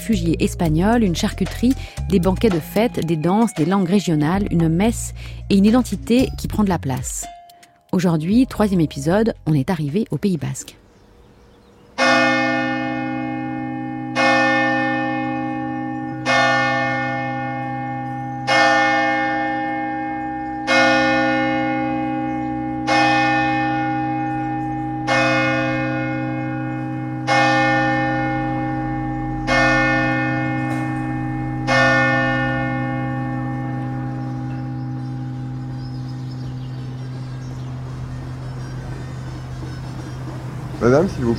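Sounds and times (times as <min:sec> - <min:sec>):
speech: 0:00.0 - 0:10.8
church bell in a French Basque village striking the hour: 0:12.0 - 0:39.8.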